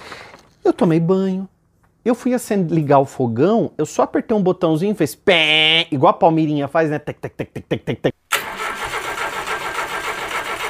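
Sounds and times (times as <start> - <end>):
speech: 0.8 - 8.2
Ford Corcel II car starter cranking but not starting: 8.3 - 10.6.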